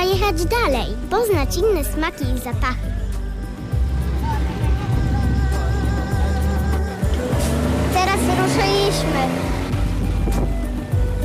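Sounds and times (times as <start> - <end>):
speech: 0.3 - 3.1, 7.4 - 9.6
tuk-tuk engine droning: 3.5 - 11.2.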